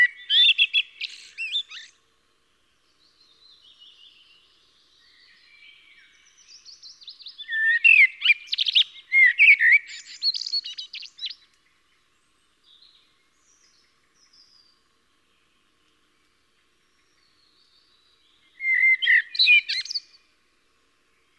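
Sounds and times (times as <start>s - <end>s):
Eurasian blackbird singing fluty warbling with chattering notes: 0.0s - 2.0s, 3.4s - 11.4s, 16.8s - 20.2s.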